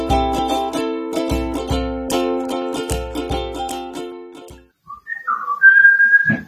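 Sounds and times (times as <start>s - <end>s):
music with steady drum beats: 0.0s - 4.6s
person whistling a brief clear rising tune: 4.9s - 6.4s.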